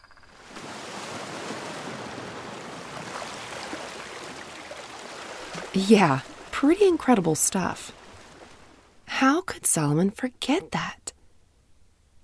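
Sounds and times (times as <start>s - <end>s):
roar of rushing water and surging waves: 0.3s - 9.1s
speech: 5.7s - 8.0s, 9.2s - 11.0s.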